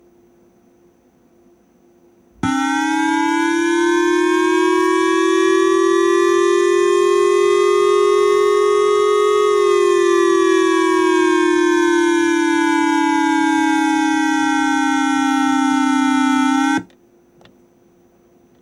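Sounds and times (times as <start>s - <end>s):
kokuminhogo civil protection siren: 2.4s - 16.9s.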